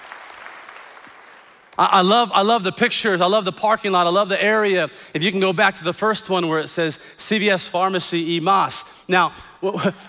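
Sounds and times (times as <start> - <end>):
audience applauding: 0.0 - 1.7
speech: 1.8 - 10.0.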